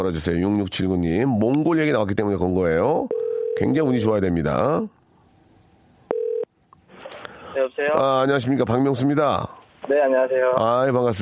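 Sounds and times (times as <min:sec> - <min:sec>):
speech: 0:00.0 - 0:05.0, 0:07.6 - 0:11.2
telephone dialing beep: 0:06.1 - 0:06.5.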